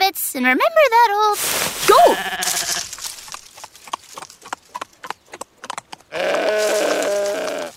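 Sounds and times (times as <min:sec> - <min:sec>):
speech: 0:00.3 - 0:02.9
hooves clip-clopping: 0:01.8 - 0:07.7
goat bleating: 0:01.9 - 0:03.0, 0:06.1 - 0:07.7.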